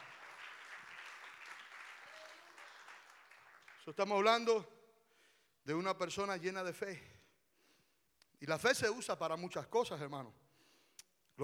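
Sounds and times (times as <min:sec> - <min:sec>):
crowd applauding: 0:00.0 - 0:04.5
speech: 0:03.9 - 0:04.8, 0:05.6 - 0:07.2, 0:08.4 - 0:10.4.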